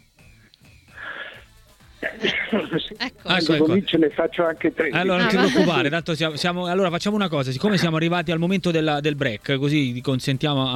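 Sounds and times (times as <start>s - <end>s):
breathy inhale: 0.9s - 2.2s
loud sharp sneeze: 1.0s - 3.0s
laughter: 2.0s - 6.0s
speech: 2.2s - 10.7s.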